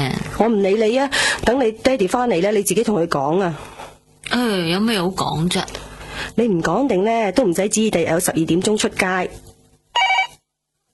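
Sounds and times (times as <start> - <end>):
speech: 0.4 - 3.7, 4.3 - 9.4
telephone bell ringing: 10.0 - 10.4.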